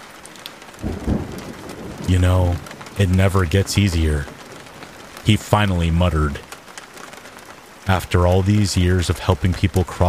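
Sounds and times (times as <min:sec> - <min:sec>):
steady rain: 0:00.0 - 0:10.0
low rumble: 0:00.8 - 0:06.2
speech: 0:02.1 - 0:04.4, 0:05.2 - 0:06.5, 0:07.9 - 0:10.0.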